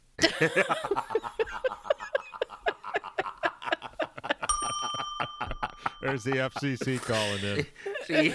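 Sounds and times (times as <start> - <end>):
laughter: 0.2 - 8.3
speech: 0.4 - 1.4, 6.0 - 8.3
bright sustained doorbell chime: 4.5 - 6.8.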